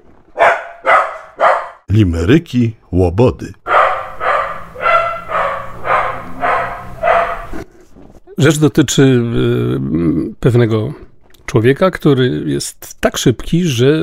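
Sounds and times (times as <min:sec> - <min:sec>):
dog barking: 0:00.4 - 0:01.9, 0:03.7 - 0:07.6
speech: 0:01.9 - 0:03.6, 0:08.4 - 0:14.0.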